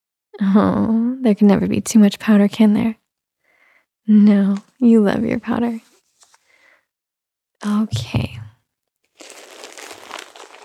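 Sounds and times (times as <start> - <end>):
speech: 0.4 - 3.0, 4.0 - 5.9, 7.6 - 8.4
disposable diaper crinkling as it is taped up: 9.1 - 10.6.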